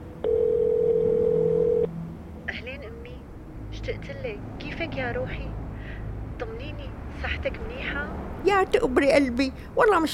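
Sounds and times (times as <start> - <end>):
faint noise: 0.0 - 10.1
electronic ringing tone from a phone video call: 0.2 - 1.9
speech: 4.8 - 5.5, 6.4 - 10.1.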